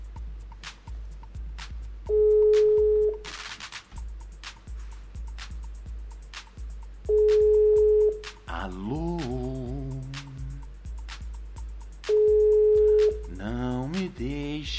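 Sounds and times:
rhythmic low thumping pulse: 0:00.0 - 0:03.3, 0:03.9 - 0:14.7
telephone ringback tones: 0:02.1 - 0:03.2, 0:07.1 - 0:08.2, 0:12.2 - 0:13.2.

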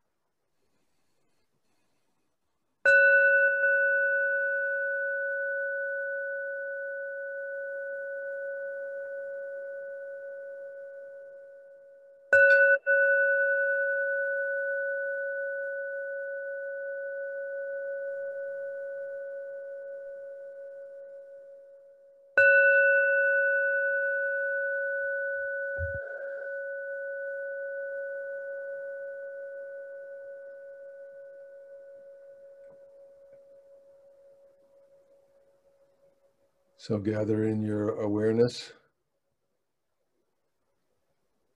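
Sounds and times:
meditation bell ringing: 0:02.9 - 0:35.4
speech: 0:36.9 - 0:38.8.

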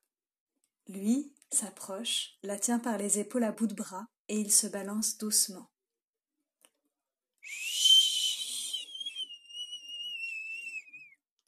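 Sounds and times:
speech: 0:00.9 - 0:05.7
man imitating the wind with breathy hissing and whistling: 0:07.4 - 0:11.2.

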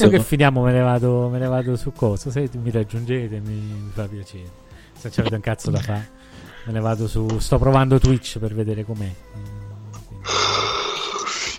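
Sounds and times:
speech: 0:00.0 - 0:09.6, 0:10.2 - 0:10.7
person yawning: 0:10.2 - 0:11.5.

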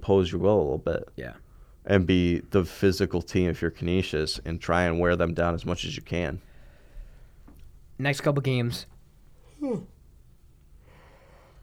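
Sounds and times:
speech: 0:00.1 - 0:06.5, 0:08.0 - 0:08.9, 0:09.6 - 0:09.9
short voiced yawn with a falling pitch: 0:09.5 - 0:10.0.

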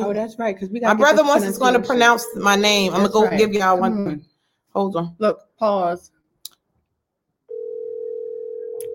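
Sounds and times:
speech: 0:00.0 - 0:06.2
phone ringing tone over a speakerphone: 0:07.5 - 0:08.9.

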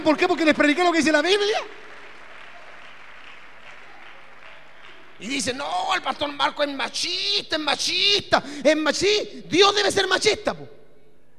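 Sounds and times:
speech: 0:00.0 - 0:01.8, 0:05.2 - 0:10.8
audience applause: 0:00.2 - 0:06.0.

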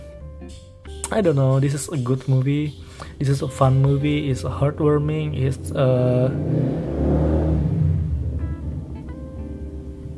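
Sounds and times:
speech: 0:00.5 - 0:06.9
motorcycle engine revving: 0:03.9 - 0:10.1.

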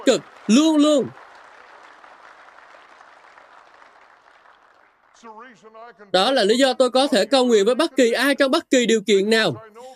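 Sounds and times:
speech: 0:00.0 - 0:01.2, 0:05.2 - 0:09.9
crowd clapping: 0:00.0 - 0:07.0.

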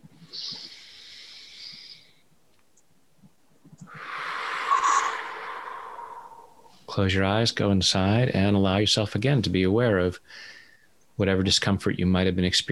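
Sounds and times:
deep breath during a guided relaxation exercise: 0:00.2 - 0:02.3, 0:03.9 - 0:06.9, 0:10.3 - 0:10.9
speech: 0:06.9 - 0:10.6, 0:11.2 - 0:12.6.

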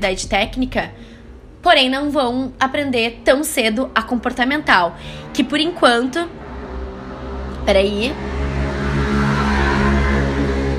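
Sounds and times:
speech: 0:00.0 - 0:06.4, 0:07.6 - 0:08.4
motorcycle engine droning outside: 0:00.0 - 0:10.7.

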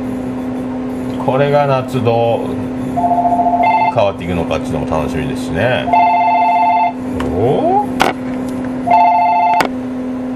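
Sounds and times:
steady low hum: 0:00.0 - 0:10.3
speech: 0:01.3 - 0:03.4, 0:04.0 - 0:06.0, 0:07.4 - 0:08.2
shop landline telephone ringing with electronic warbling tone: 0:03.0 - 0:04.1, 0:05.9 - 0:07.0, 0:08.8 - 0:09.7.

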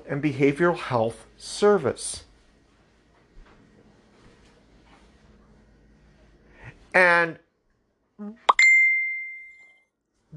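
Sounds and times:
speech: 0:00.1 - 0:02.3, 0:06.9 - 0:07.4, 0:08.2 - 0:08.4
electronic phone notification chime with low tone, click and ding: 0:08.5 - 0:09.8.

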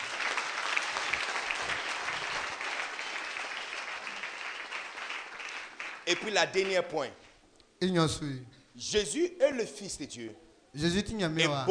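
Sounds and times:
audience applauding at a church gathering: 0:00.0 - 0:06.9
speech: 0:06.1 - 0:07.2, 0:07.8 - 0:11.6.

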